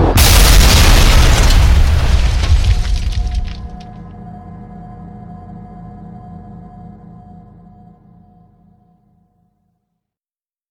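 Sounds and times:
thrown grenades exploding in a battle: 0.2 - 3.8.

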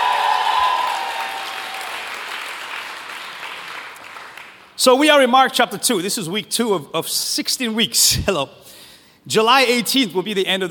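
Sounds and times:
congregation applauding during a church service: 0.0 - 4.8
speech: 4.8 - 10.7.

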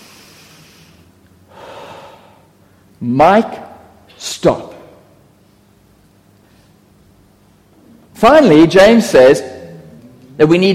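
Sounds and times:
deep breath drawn in through the nose and mouth: 0.0 - 2.8
soft steady hiss: 0.0 - 10.7
speech: 3.0 - 3.6, 4.2 - 4.7, 8.2 - 9.6, 10.4 - 10.7.

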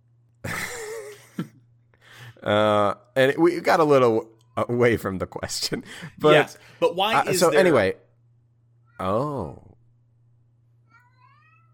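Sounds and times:
steady low electrical hum: 0.0 - 11.7
speech: 2.4 - 8.0, 9.0 - 9.7
cat meowing: 10.9 - 11.7.

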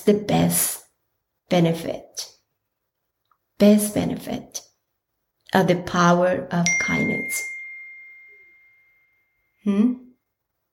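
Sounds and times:
speech: 0.0 - 0.8, 1.5 - 2.3, 3.6 - 4.7, 5.5 - 7.5, 9.6 - 10.0
phone notification bing: 6.6 - 9.0
person vocalizing: 9.7 - 10.0.

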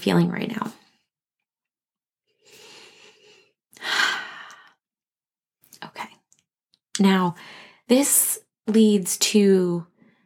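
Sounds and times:
speech: 0.0 - 0.8, 7.0 - 9.9
deep breath: 2.4 - 4.8.

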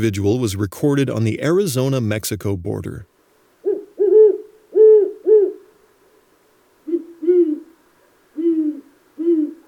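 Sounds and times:
speech: 0.0 - 3.1
great horned owl hooting: 3.6 - 5.9, 6.8 - 9.6.

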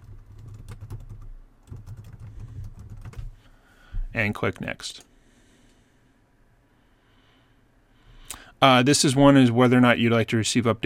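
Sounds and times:
typing on a computer keyboard: 0.0 - 3.3
speech: 4.2 - 5.1, 8.6 - 10.8.

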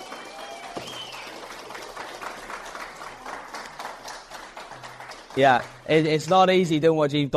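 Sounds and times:
high whistle from crowd: 0.0 - 1.4
audience applause: 0.0 - 5.8
speech: 5.4 - 7.3.

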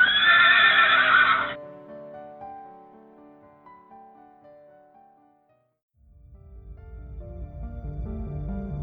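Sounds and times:
horse whinnying: 0.0 - 1.6.

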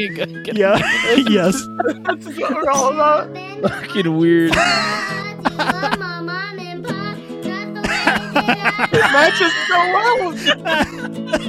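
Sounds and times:
speech: 0.0 - 6.6, 8.5 - 11.4
steady humming musical backing: 0.0 - 11.4
laughter: 0.6 - 2.9, 3.6 - 6.2, 7.8 - 11.4
toddler singing a wavering drawn-out melody: 2.3 - 11.2.

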